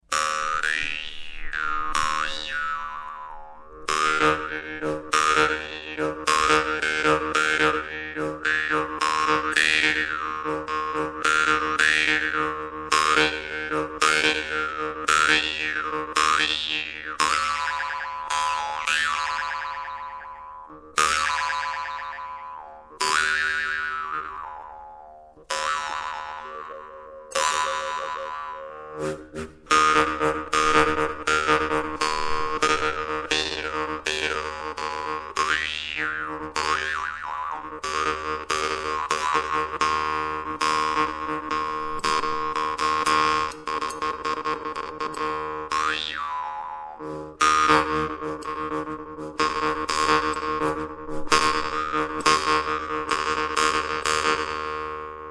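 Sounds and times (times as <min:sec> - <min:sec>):
Yakut khomus jaw harp: 0:00.1 - 0:54.6.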